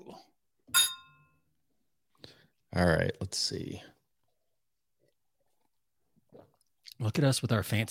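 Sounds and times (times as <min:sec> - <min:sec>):
two beer glasses clinking in a toast: 0:00.7 - 0:01.3
speech: 0:02.8 - 0:04.0, 0:07.0 - 0:07.8.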